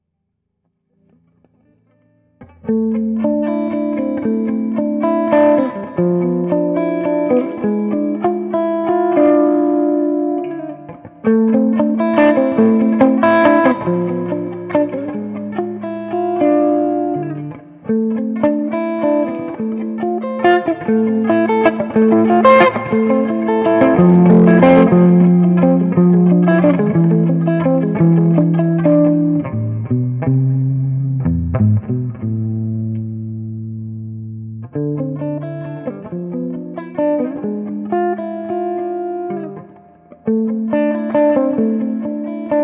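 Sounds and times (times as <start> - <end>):
electric guitar through a Diezel Einstein amplifier clean channel: 0.9 - 42.6.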